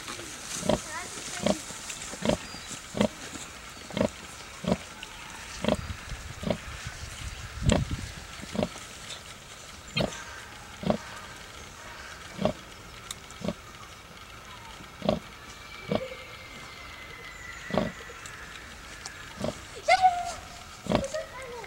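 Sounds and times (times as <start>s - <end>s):
Sus scrofa wild boar grunting: 0.5s - 8.9s, 9.9s - 12.7s, 13.4s - 13.7s, 14.9s - 16.2s, 17.6s - 19.8s, 20.7s - 21.6s.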